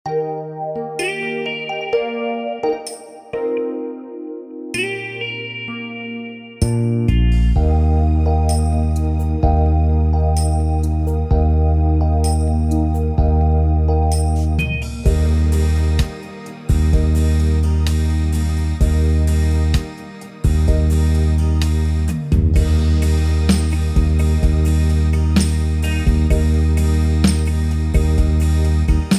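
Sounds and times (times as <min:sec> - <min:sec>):
beat ballad: 0:00.0 - 0:29.1.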